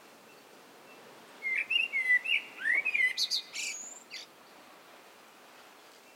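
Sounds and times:
common blackbird song, Turdus merula: 0:00.2 - 0:04.4.

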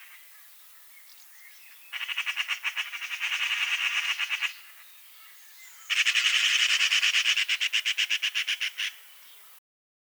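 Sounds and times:
Eurasian magpie Pica pica giving harsh dry rattling chatter: 0:01.9 - 0:09.5.

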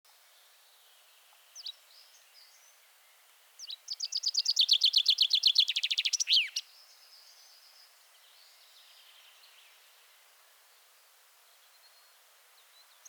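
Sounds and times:
common chaffinch singing: 0:03.6 - 0:06.6.

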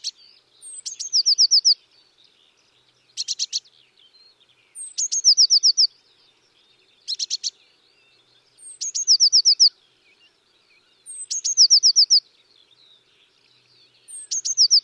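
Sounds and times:
Eurasian blue tit Cyanistes caeruleus giving high trill calls: 0:00.0 - 0:01.8, 0:03.2 - 0:03.7, 0:04.8 - 0:05.9, 0:08.6 - 0:09.7, 0:11.1 - 0:12.2, 0:14.0 - 0:14.8.

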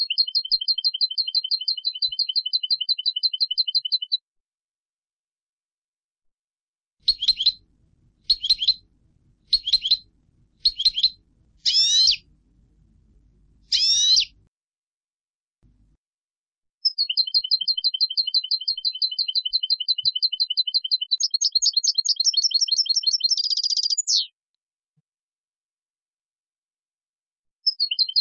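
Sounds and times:
European goldfinch Carduelis carduelis singing with twittering bursts and trills: 0:00.0 - 0:04.2, 0:07.0 - 0:07.6, 0:08.2 - 0:12.3, 0:13.7 - 0:14.4, 0:16.8 - 0:24.3, 0:27.6 - 0:28.1.

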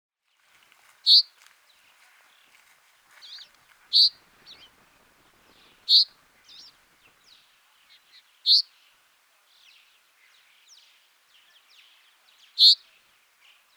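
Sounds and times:
common chaffinch Fringilla coelebs calls: 0:01.1 - 0:01.3, 0:03.2 - 0:04.7, 0:05.6 - 0:06.7, 0:08.5 - 0:08.7, 0:12.6 - 0:12.8
soft chirps: 0:03.2 - 0:04.7, 0:05.9 - 0:06.7.

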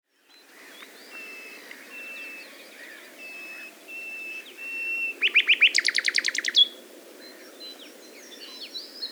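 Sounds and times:
common nightingale Luscinia megarhynchos song with whistled note and rapid pulses: 0:00.1 - 0:06.7.

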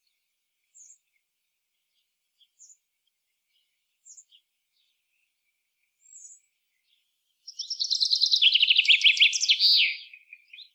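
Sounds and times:
common chaffinch Fringilla coelebs song: 0:07.5 - 0:10.7.

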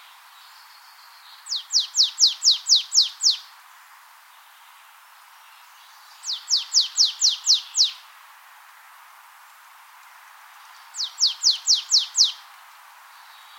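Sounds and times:
marsh tit Poecile palustris calling in high sharply falling notes: 0:01.5 - 0:03.4, 0:06.3 - 0:08.0, 0:11.0 - 0:12.4.

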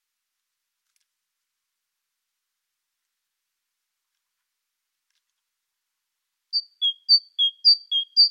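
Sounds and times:
Parus major great tit song: 0:06.6 - 0:08.2.

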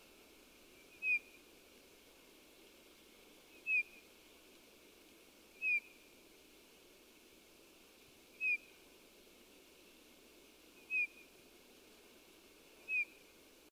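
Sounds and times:
faint steady background noise: 0:00.0 - 0:13.7
Eurasian bullfinch Pyrrhula pyrrhula giving mellow downslurred whistles: 0:00.8 - 0:01.4, 0:03.5 - 0:04.0, 0:05.6 - 0:06.0, 0:08.4 - 0:08.7, 0:10.8 - 0:11.2, 0:12.8 - 0:13.2.

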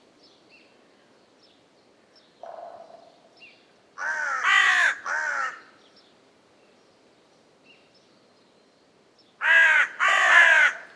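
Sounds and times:
carrion crow Corvus corone cawing: 0:04.0 - 0:05.7, 0:09.4 - 0:10.9.

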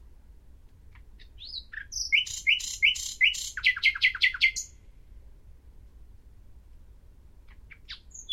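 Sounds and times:
common nightingale Luscinia megarhynchos singing: 0:00.9 - 0:04.9, 0:07.4 - 0:08.3.

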